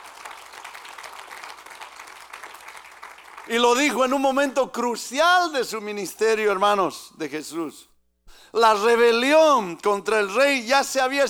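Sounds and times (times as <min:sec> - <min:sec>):
crowd applauding during a sermon: 0:00.0 - 0:04.2
speech: 0:03.4 - 0:07.9, 0:08.5 - 0:11.2.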